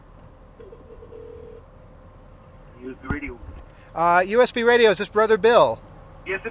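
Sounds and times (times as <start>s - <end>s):
buzzy telephone ringback tone heard down the line: 0.6s - 1.6s
speech: 2.9s - 6.4s.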